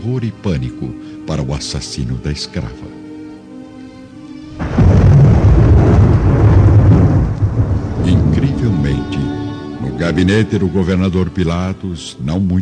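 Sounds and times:
speech: 0:00.0 - 0:03.0, 0:10.1 - 0:12.5
steady hiss of rain: 0:04.2 - 0:10.7
deep roll of thunder in a thunderstorm: 0:04.6 - 0:09.8.

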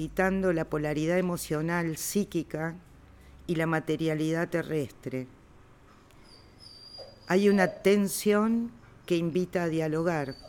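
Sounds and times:
speech: 0:00.0 - 0:02.9, 0:03.5 - 0:05.4, 0:07.3 - 0:10.4
low hum: 0:00.0 - 0:10.4
dog whimpering with a thin high-pitched whine: 0:06.4 - 0:08.1, 0:10.1 - 0:10.4.

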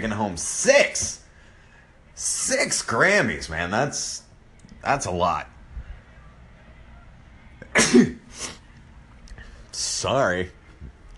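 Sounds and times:
speech: 0:00.0 - 0:01.2, 0:02.5 - 0:04.2, 0:04.8 - 0:05.5, 0:07.7 - 0:08.5, 0:10.0 - 0:10.6
sneeze: 0:07.7 - 0:08.6.

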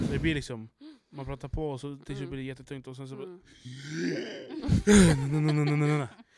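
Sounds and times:
speech: 0:00.1 - 0:06.2
voice imitating gasping for breath with groaning, sharp intake and long voiced exhale: 0:03.4 - 0:05.4
laughter: 0:04.2 - 0:06.3.

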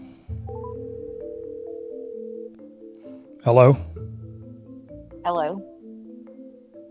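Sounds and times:
outgoing phone call ringing tone on the line: 0:00.5 - 0:02.7
speech: 0:03.4 - 0:03.9, 0:05.3 - 0:05.7.

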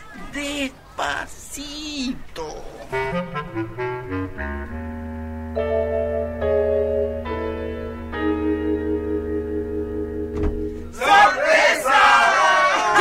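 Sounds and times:
speech: 0:00.4 - 0:04.8
sustained musical notes ringing out: 0:02.9 - 0:11.0
crowd of people shouting inside a house: 0:11.0 - 0:12.9.

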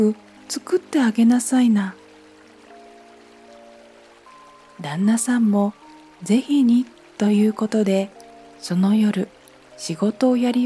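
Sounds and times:
speech: 0:00.0 - 0:02.0, 0:04.8 - 0:10.6
stream water babbling: 0:00.0 - 0:10.6.

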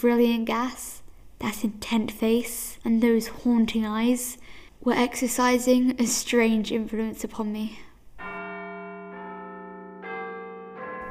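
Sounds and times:
speech: 0:00.0 - 0:07.9
church steeple clock bells tolling the hour: 0:08.2 - 0:11.1.

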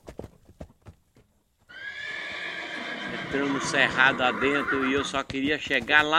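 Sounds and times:
thudding hoofbeats of a galloping horse: 0:00.0 - 0:06.1
loud drawn-out horse neigh: 0:01.7 - 0:05.3
speech: 0:03.3 - 0:06.1.

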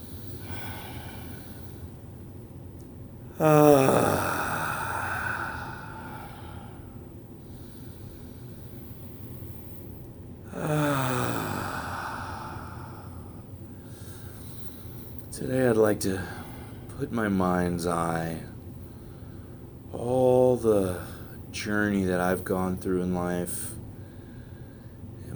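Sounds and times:
deep soothing breaths with sighing exhalations: 0:00.0 - 0:02.2, 0:03.3 - 0:15.3, 0:18.8 - 0:19.7, 0:23.9 - 0:25.1
speech: 0:03.4 - 0:04.3, 0:15.9 - 0:16.4, 0:17.0 - 0:18.5, 0:20.0 - 0:23.8.

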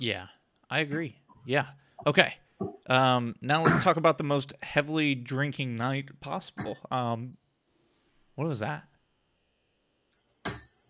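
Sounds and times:
speech: 0:00.0 - 0:07.4, 0:08.4 - 0:08.9
sharp metallic ding from a kitchen sink: 0:06.6 - 0:06.9, 0:10.5 - 0:10.8.

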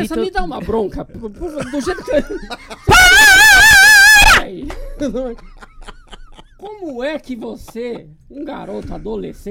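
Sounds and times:
speech: 0:00.0 - 0:03.6, 0:04.5 - 0:05.6, 0:06.6 - 0:09.5
laughter: 0:01.6 - 0:03.8, 0:04.7 - 0:08.1
loud tuned scream pitched around B-flat: 0:02.9 - 0:04.5.

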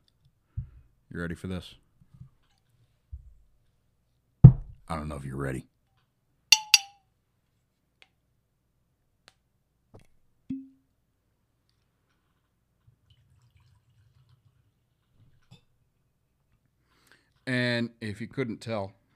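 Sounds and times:
speech: 0:01.2 - 0:01.8, 0:04.9 - 0:05.7, 0:17.5 - 0:19.0
glass clinks: 0:06.6 - 0:06.9
light taps on glass: 0:06.6 - 0:06.9.

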